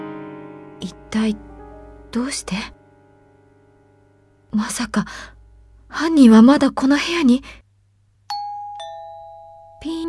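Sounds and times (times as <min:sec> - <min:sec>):
quiet hum: 0:00.3 - 0:10.0
speech: 0:00.8 - 0:01.5, 0:02.1 - 0:02.8, 0:04.5 - 0:07.6
intercom doorbell two-note chime: 0:08.3 - 0:10.0.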